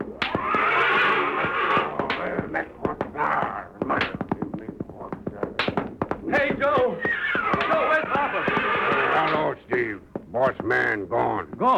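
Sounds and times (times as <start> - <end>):
horse hooves stamping and scuffling: 0.0 - 11.7
big black horse neighing and snorting: 0.3 - 1.9, 7.0 - 9.2.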